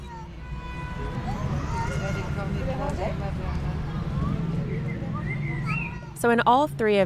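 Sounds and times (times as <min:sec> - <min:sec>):
road traffic rumble of passing cars: 0:00.0 - 0:07.0
Eurasian blackbird singing: 0:04.1 - 0:06.2
speech: 0:06.2 - 0:07.0.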